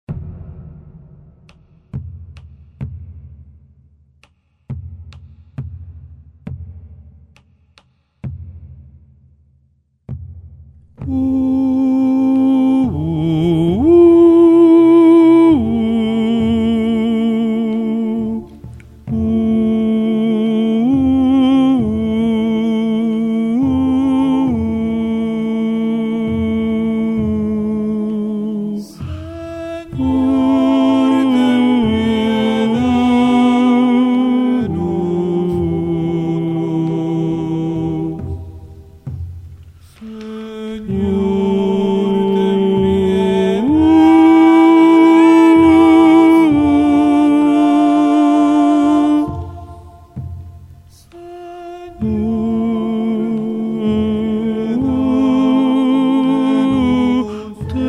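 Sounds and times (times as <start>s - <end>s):
bass voice singing: 11.0s - 39.2s, 40.0s - 57.8s.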